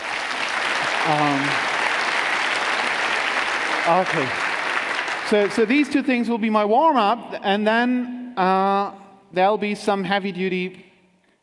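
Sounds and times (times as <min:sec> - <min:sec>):
audience applause: 0:00.0 - 0:05.9
speech: 0:01.0 - 0:01.7, 0:03.9 - 0:04.5, 0:05.3 - 0:10.9.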